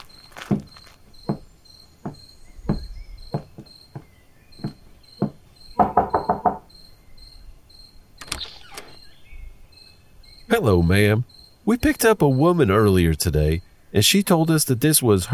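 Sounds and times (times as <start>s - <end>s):
crickets chirping: 0.0s - 12.7s
knocking on a front door: 0.5s - 6.7s
speech: 10.6s - 15.3s.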